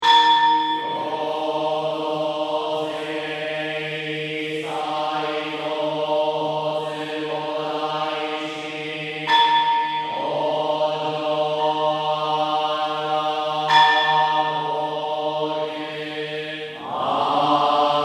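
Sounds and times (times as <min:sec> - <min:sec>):
bells ringing in Buddhist ceremony in Tokyo Japan: 0:00.0 - 0:01.3, 0:09.1 - 0:10.7, 0:13.6 - 0:15.0
male Buddhist monks chanting drone chant in ceremony in Tokyo Japan: 0:00.0 - 0:18.0.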